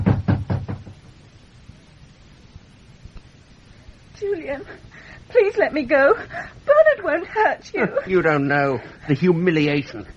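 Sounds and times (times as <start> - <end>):
heavy pounding on a door: 0.0 - 1.1
speech: 4.2 - 10.1.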